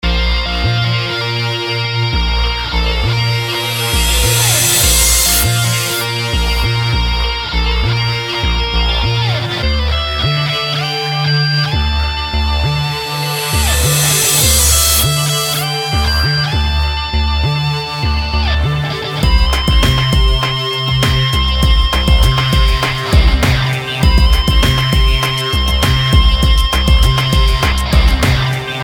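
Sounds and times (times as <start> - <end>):
rock pop music: 0.7 - 28.8.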